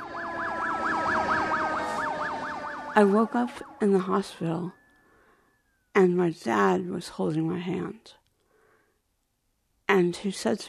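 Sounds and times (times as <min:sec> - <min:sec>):
distant emergency sirens wailing in a rise-and-fall yelp: 0:00.0 - 0:05.9
speech: 0:03.0 - 0:04.8, 0:06.0 - 0:08.2, 0:09.9 - 0:10.6.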